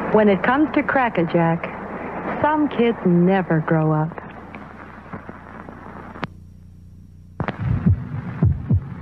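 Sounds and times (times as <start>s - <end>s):
speech: 0.1s - 1.7s, 2.4s - 4.2s
human heartbeat: 7.4s - 8.9s.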